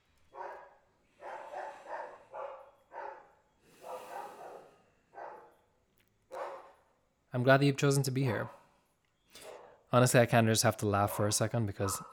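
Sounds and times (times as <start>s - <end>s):
dogs barking outside: 0.4s - 5.5s, 6.3s - 6.8s
speech: 7.3s - 8.6s, 9.9s - 12.1s.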